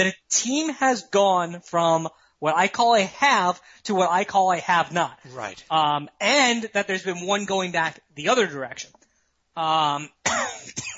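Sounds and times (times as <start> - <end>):
speech: 0.0 - 9.0, 9.6 - 10.9
ill man coughing: 10.2 - 10.9.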